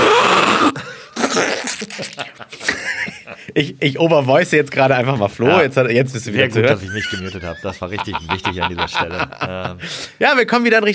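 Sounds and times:
voice imitating nose blowing: 0:00.0 - 0:02.2
laughter: 0:01.7 - 0:04.0, 0:06.3 - 0:10.0
speech: 0:03.6 - 0:10.9.

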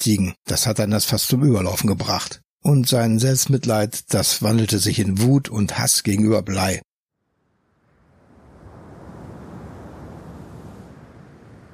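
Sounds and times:
speech: 0:00.0 - 0:06.9
soft surf-like swells on open water: 0:07.3 - 0:11.7
steady wind blowing over calm open sea: 0:07.4 - 0:11.7.

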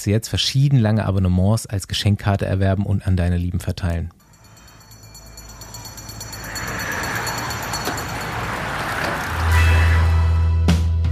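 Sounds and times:
speech: 0:00.0 - 0:04.2
moving bus engine rumble and road noise: 0:04.6 - 0:10.6.

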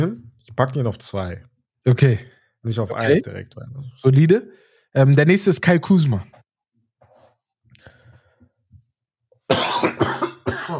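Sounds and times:
speech: 0:00.0 - 0:06.4
faint breathy sounds: 0:04.5 - 0:04.9, 0:07.7 - 0:08.6
person coughing: 0:09.5 - 0:10.7.

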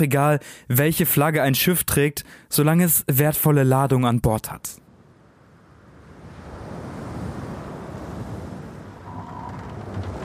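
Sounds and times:
speech: 0:00.0 - 0:04.8
strong wind blowing across the microphone at sea: 0:04.9 - 0:10.2
ocean surf rushing at sea: 0:05.1 - 0:10.2.

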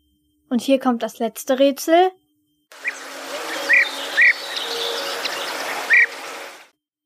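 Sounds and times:
buzzing insect-like hum: 0:00.0 - 0:06.7
speech: 0:00.5 - 0:02.2
bee-eater bird calls: 0:02.8 - 0:06.6.

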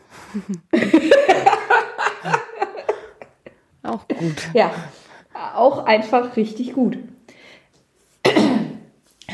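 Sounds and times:
speech: 0:00.3 - 0:01.5, 0:04.2 - 0:05.0, 0:05.6 - 0:07.1
laughter: 0:00.3 - 0:05.0
woman clearing throat with a rough cough: 0:08.2 - 0:08.9.

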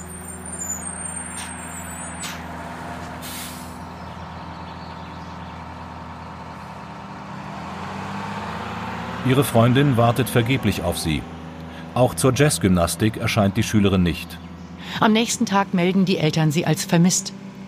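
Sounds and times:
hissing bursts of bus air brakes: 0:00.0 - 0:04.0
large bus engine idling: 0:00.0 - 0:17.6
speech: 0:09.2 - 0:11.4, 0:12.0 - 0:17.4.

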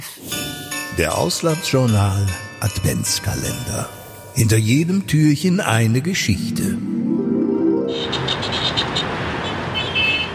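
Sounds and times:
speech: 0:01.0 - 0:07.1
many car horns honking in Cairo city traffic: 0:07.9 - 0:10.3.

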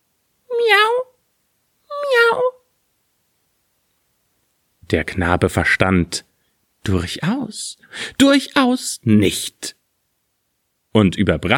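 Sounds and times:
person imitating drawn-out cat meows: 0:00.5 - 0:01.2, 0:01.9 - 0:02.7
speech: 0:04.9 - 0:09.8, 0:10.9 - 0:11.5.

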